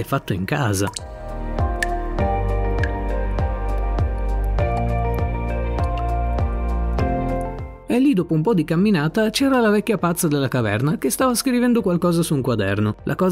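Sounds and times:
speech: 0:00.0 - 0:01.1, 0:08.0 - 0:13.3
water dripping into a barrel: 0:00.8 - 0:07.6.

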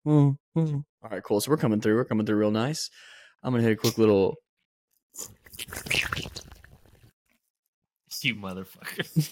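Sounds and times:
speech: 0:00.0 - 0:04.4, 0:05.1 - 0:06.5, 0:08.2 - 0:09.3
loud wet drink slurp: 0:05.2 - 0:07.1.

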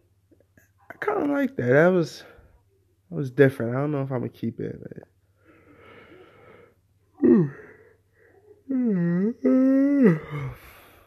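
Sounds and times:
speech: 0:01.0 - 0:02.3, 0:03.1 - 0:05.1
breathy intake before a yawn: 0:05.4 - 0:11.0
person yawning: 0:07.2 - 0:07.9, 0:08.7 - 0:11.0.

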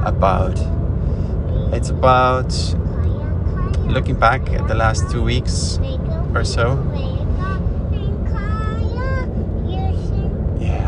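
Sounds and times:
road noise inside a moving car: 0:00.0 - 0:10.8
speech: 0:00.2 - 0:00.8, 0:01.7 - 0:02.8, 0:03.9 - 0:07.6
young girl warbling singing while falling asleep: 0:02.8 - 0:10.5.

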